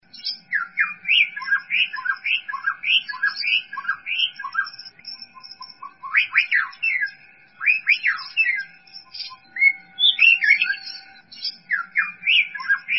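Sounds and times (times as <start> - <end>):
faint constant tone: 0.0 - 12.9
white-rumped shama song of swooping and rising whistles: 0.0 - 12.9.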